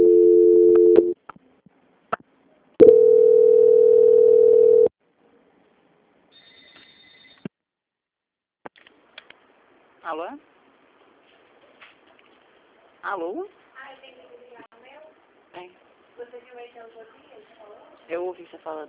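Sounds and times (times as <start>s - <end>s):
telephone line tones during a call transfer: 0.0s - 1.2s, 2.8s - 4.9s
speech: 13.2s - 13.6s, 16.4s - 18.8s.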